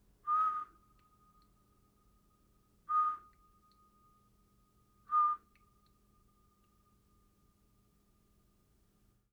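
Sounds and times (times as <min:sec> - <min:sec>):
symphonic whistle: 0:00.2 - 0:01.2, 0:02.9 - 0:03.5, 0:05.1 - 0:05.7.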